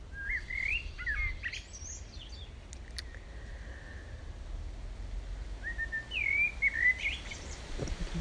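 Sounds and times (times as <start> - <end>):
birds chirping and whistling in a shady tree in summer: 0.0 - 3.8, 5.6 - 7.7
soft steady outdoor rumble: 0.0 - 8.1.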